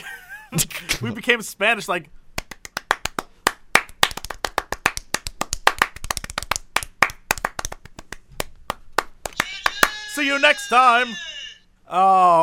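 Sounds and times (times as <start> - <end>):
speech: 0.5 - 2.2, 10.2 - 11.3, 11.9 - 12.4
rhythmic hand clapping: 2.4 - 10.6.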